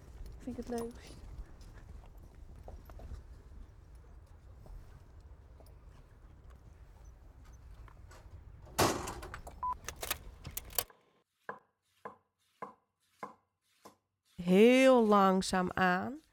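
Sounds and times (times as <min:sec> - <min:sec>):
horse hooves clip-clopping on a hard surface: 0:00.0 - 0:10.6
speech: 0:00.4 - 0:01.2, 0:14.5 - 0:16.2.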